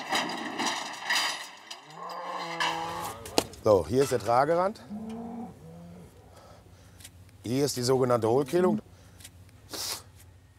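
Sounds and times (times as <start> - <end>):
rustling and shuffling in a barn: 0.0 - 4.4, 6.1 - 10.5
cattle lowing in a barn during hoof trimming: 1.9 - 3.4, 4.8 - 6.2
speech: 3.6 - 5.1, 7.5 - 8.8.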